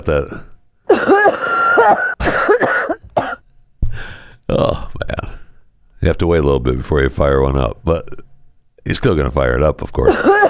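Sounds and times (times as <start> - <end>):
speech: 0.0 - 2.7, 4.5 - 5.1, 6.0 - 10.4
harsh raspy coughing fit: 0.9 - 3.4, 10.1 - 10.4
strained wheezy breaths: 3.8 - 4.4.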